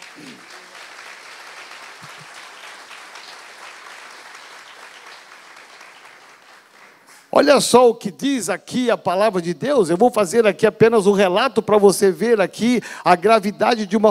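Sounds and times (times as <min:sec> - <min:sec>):
audience applauding: 0:00.0 - 0:07.3
speech: 0:07.4 - 0:14.0.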